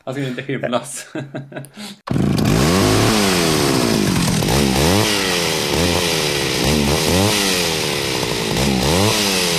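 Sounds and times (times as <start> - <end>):
speech: 0.0 - 2.8
laughter: 0.1 - 2.1
chainsaw revving: 2.1 - 9.5.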